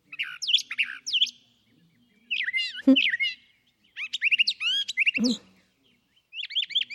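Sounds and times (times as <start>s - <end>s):
brown thrasher singing: 0.0s - 6.9s.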